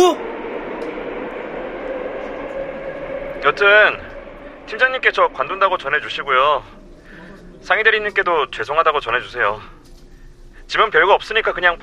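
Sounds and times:
subway train in motion rumbling: 0:00.0 - 0:11.8
speech: 0:03.4 - 0:04.1, 0:04.7 - 0:06.8, 0:07.6 - 0:09.7, 0:10.7 - 0:11.8.

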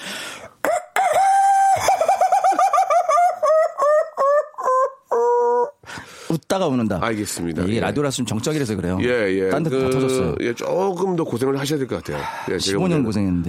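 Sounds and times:
man's voice imitating a rooster crowing: 0:00.6 - 0:02.6, 0:03.2 - 0:05.8
man's rhythmic laugh-like hoots in a crowing tone: 0:01.0 - 0:05.8
speech: 0:06.3 - 0:13.4.

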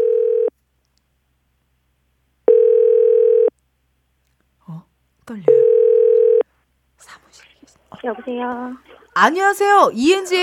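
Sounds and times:
electronic telephone dial tone while placing call: 0:02.5 - 0:03.5, 0:05.6 - 0:06.4
speech: 0:05.3 - 0:05.8, 0:08.0 - 0:10.4.

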